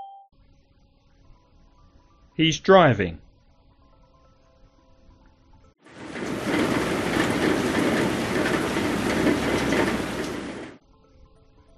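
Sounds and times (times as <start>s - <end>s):
speech: 2.4s - 3.2s
heavy steady rain pouring: 5.9s - 10.8s.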